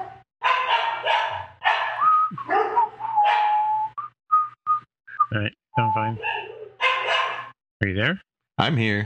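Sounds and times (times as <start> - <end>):
dog barking with whiny barks: 0.0 - 3.6, 6.2 - 7.6
speech: 5.3 - 6.4, 7.8 - 9.0.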